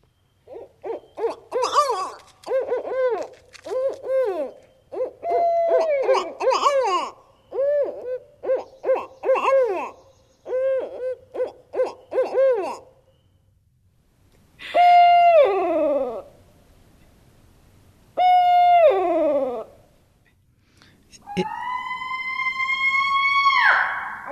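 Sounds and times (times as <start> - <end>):
barred owl wailing, squalling cries: 0.4 - 13.0, 18.2 - 19.7, 21.3 - 24.3
barred owl hooting: 0.4 - 13.3, 14.7 - 16.3, 18.2 - 19.8, 21.2 - 24.3.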